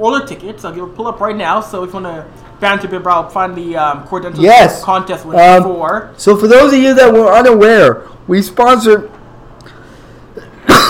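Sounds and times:
speech: 0:00.0 - 0:09.2
harsh chesty cough: 0:10.4 - 0:10.8.

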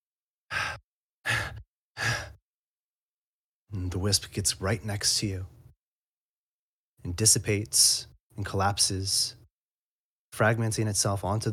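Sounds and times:
bated breathing: 0:00.5 - 0:02.4
speech: 0:03.8 - 0:05.6, 0:07.0 - 0:09.4, 0:10.3 - 0:11.5.

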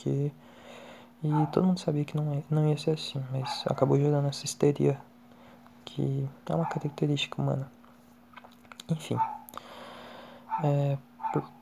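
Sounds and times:
speech: 0:00.0 - 0:00.6, 0:01.2 - 0:05.1, 0:05.8 - 0:07.8, 0:08.9 - 0:09.4, 0:10.6 - 0:11.6
low steady hum: 0:00.0 - 0:11.6
dog barking: 0:01.2 - 0:01.7, 0:03.4 - 0:04.0, 0:06.5 - 0:07.0, 0:09.1 - 0:09.5, 0:10.5 - 0:11.6.

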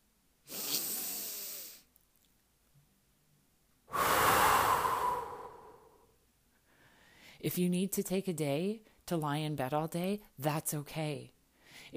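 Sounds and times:
slow deep breathing: 0:03.9 - 0:07.4
speech: 0:07.4 - 0:11.9.

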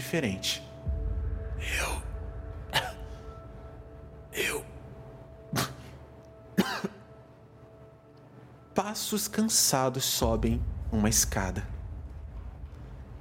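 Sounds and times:
low steady hum: 0:00.0 - 0:13.1
speech: 0:00.1 - 0:00.7, 0:09.0 - 0:11.8
person coughing and clearing throat: 0:02.7 - 0:03.2, 0:04.3 - 0:04.8, 0:05.5 - 0:06.0, 0:06.6 - 0:07.1.

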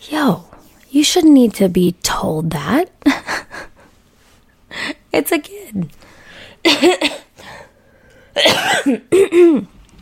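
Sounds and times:
speech: 0:00.1 - 0:03.0, 0:05.2 - 0:06.0, 0:06.6 - 0:07.2, 0:08.4 - 0:09.7
harsh rasping throaty coughs: 0:06.7 - 0:07.3, 0:08.4 - 0:09.7.

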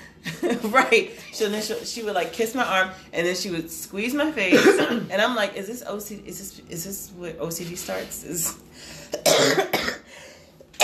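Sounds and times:
speech: 0:00.5 - 0:09.7
harsh breathy coughs: 0:04.5 - 0:05.1, 0:09.1 - 0:10.1.

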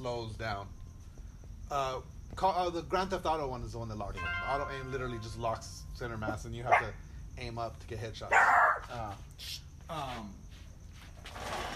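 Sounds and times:
speech: 0:00.0 - 0:00.8, 0:01.7 - 0:10.4, 0:11.2 - 0:11.7
dog barking: 0:06.6 - 0:07.0, 0:08.3 - 0:08.9.

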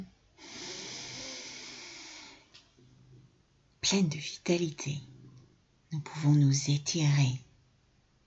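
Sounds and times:
long deep inhalation: 0:00.4 - 0:02.5
soft exhale: 0:00.4 - 0:02.5
speech: 0:03.8 - 0:05.1, 0:05.9 - 0:07.5.

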